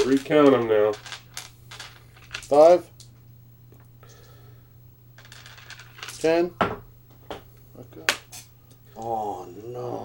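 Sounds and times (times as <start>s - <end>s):
speech: 0.0s - 1.2s, 2.5s - 2.9s, 6.2s - 6.9s, 9.0s - 10.0s
dice thrown and scattering across a garage floor: 0.0s - 2.8s, 5.2s - 6.8s
low hum: 0.0s - 10.0s.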